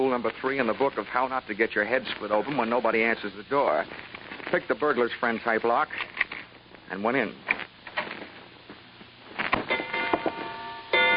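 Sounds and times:
speech: 0.0s - 6.2s, 6.9s - 7.5s
noisy background: 0.0s - 11.1s
grandfather clock tolling ten o'clock: 9.7s - 11.1s.

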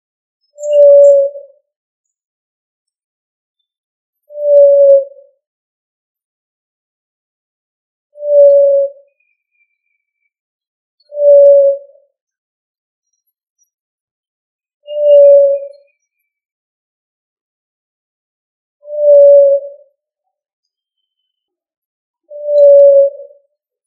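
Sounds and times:
pigeon cooing, Columbidae: 0.7s - 1.4s, 4.4s - 5.2s, 8.3s - 9.0s, 15.0s - 15.8s, 19.0s - 19.7s, 22.4s - 23.3s.

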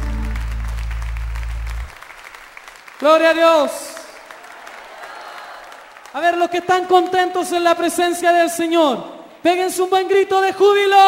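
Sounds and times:
sustained low musical tone: 0.0s - 1.7s
congregation applauding at a live church worship service: 0.0s - 8.5s
speech: 3.0s - 3.8s, 6.1s - 11.0s.

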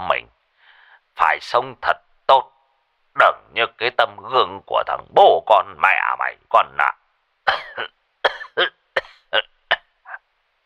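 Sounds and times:
speech: 1.4s - 2.5s, 3.5s - 7.9s
elderly man's violent coughing fit over the phone: 7.5s - 10.2s.

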